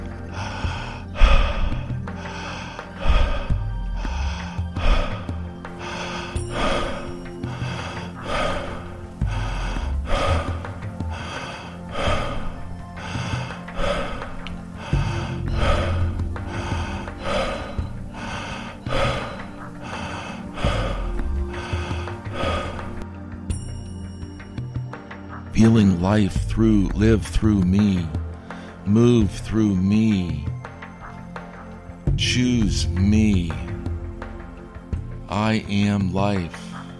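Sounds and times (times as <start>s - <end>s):
forceful airy breathing in and out through the mouth during a breathing exercise: 0.0s - 23.3s
soft sustained music: 0.0s - 36.9s
speech: 25.6s - 28.2s, 28.9s - 30.5s, 32.2s - 33.7s, 35.4s - 36.7s.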